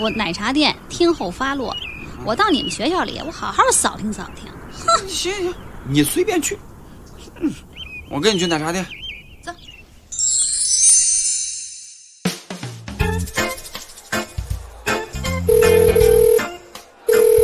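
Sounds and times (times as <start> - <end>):
speech: 0.0 - 6.7, 7.4 - 9.0
music: 12.0 - 17.4
telephone ringing unanswered: 15.5 - 16.5, 17.1 - 17.4.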